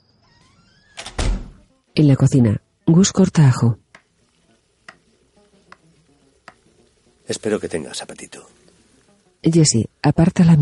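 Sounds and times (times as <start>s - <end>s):
door closing as someone enters a house: 0.1s - 1.6s
speech: 2.0s - 3.8s, 7.3s - 8.6s, 9.4s - 10.5s.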